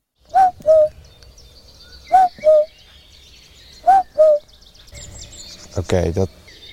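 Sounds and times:
faint birdsong chirps: 0.0 - 6.7
person imitating a cuckoo in the Amsterdam Water Supply Dunes: 0.3 - 0.9, 2.1 - 2.7, 3.9 - 4.4
speech: 5.8 - 6.4.

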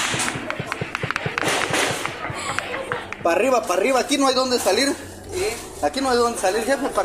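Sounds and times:
gunshots in crossfire during an armed clash in Chiapas Mexico: 0.0 - 3.5
voices: 0.0 - 7.0
speech: 3.2 - 7.0.

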